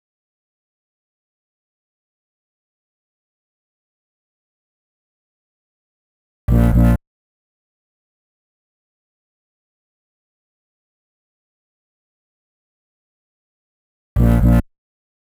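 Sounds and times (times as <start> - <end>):
electro bass synth in G at 125 bpm: 6.5 - 7.0, 14.2 - 14.6.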